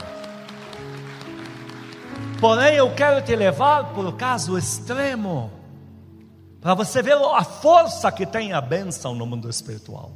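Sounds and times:
audience applauding: 0:00.0 - 0:03.6
speech: 0:02.4 - 0:05.6, 0:06.6 - 0:10.1.

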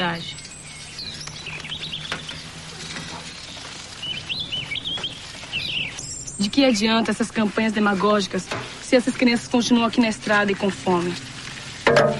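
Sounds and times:
speech: 0:00.0 - 0:00.4, 0:06.4 - 0:11.3, 0:11.9 - 0:12.1
small bird chirping: 0:00.0 - 0:06.9.

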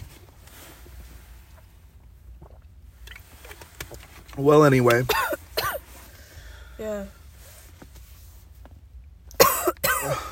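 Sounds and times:
speech: 0:04.4 - 0:05.2
harsh coughs: 0:05.1 - 0:05.8, 0:09.4 - 0:10.3.

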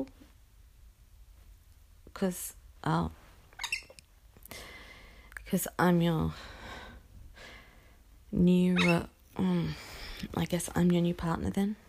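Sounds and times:
speech: 0:02.2 - 0:03.2, 0:05.5 - 0:06.6, 0:08.3 - 0:11.8
pet bird chattering chirps: 0:03.6 - 0:04.0
pet bird squawking: 0:03.6 - 0:04.0, 0:08.8 - 0:09.1.

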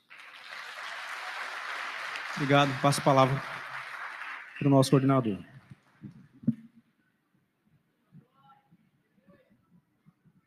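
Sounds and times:
audience applauding: 0:00.0 - 0:06.1
speech: 0:02.4 - 0:03.5, 0:04.6 - 0:06.2.

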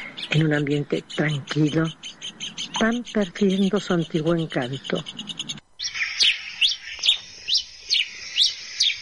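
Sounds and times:
several birds chirping and trilling: 0:00.0 - 0:08.9
steady high twittering background: 0:00.0 - 0:08.9
speech: 0:00.3 - 0:05.3.

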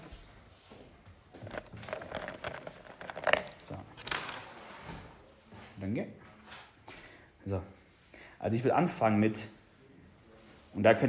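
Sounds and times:
sheets of paper rustling and crinkling as they are passed along: 0:01.3 - 0:05.0
speech: 0:05.9 - 0:06.2, 0:07.4 - 0:07.8, 0:08.4 - 0:09.6, 0:10.8 - 0:11.0.

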